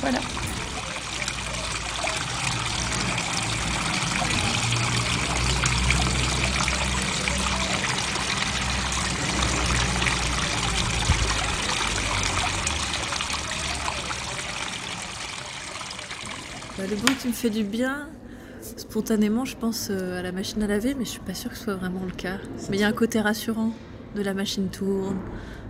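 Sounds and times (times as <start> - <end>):
water trickling from a small fountain: 0.0 - 17.9
speech: 0.1 - 0.4, 16.9 - 18.2, 18.8 - 25.6.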